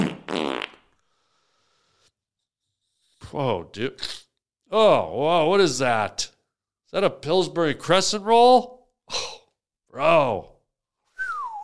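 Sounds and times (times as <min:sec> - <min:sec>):
fart: 0:00.0 - 0:00.9
speech: 0:03.3 - 0:06.3, 0:06.9 - 0:09.3, 0:09.9 - 0:10.5.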